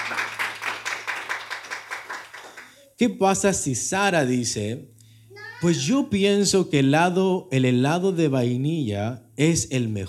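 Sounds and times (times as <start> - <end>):
group clapping hands in a steady rhythm: 0.0 - 2.8
speech: 3.0 - 4.9, 5.6 - 10.0.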